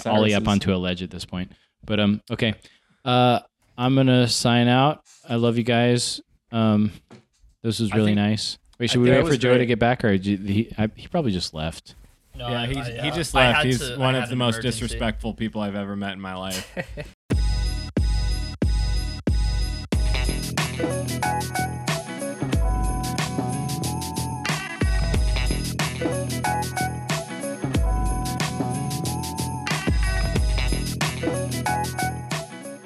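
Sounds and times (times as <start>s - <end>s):
upbeat podcast closing credits music: 0.0s - 0.6s, 8.9s - 9.6s, 13.0s - 15.0s, 17.3s - 32.8s
speech: 0.0s - 17.2s
laughter: 8.9s - 9.6s, 16.5s - 17.2s.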